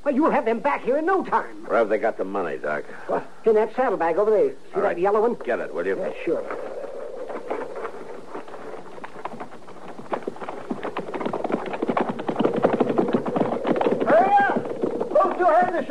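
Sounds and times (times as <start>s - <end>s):
speech: 0.1s - 6.8s
brief voice-like calls: 5.4s - 15.8s
horse hooves clip-clopping: 6.4s - 15.8s.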